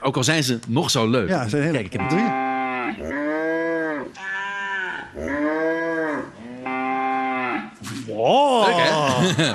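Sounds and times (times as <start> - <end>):
speech: 0.0 - 3.2, 8.2 - 9.5
cow mooing: 2.0 - 7.8
laughter: 8.6 - 9.5.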